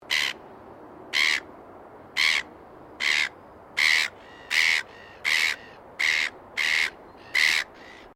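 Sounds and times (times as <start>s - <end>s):
background hiss: 0.0s - 8.1s
Silver gull giving harsh hoarse squawks: 2.2s - 8.1s.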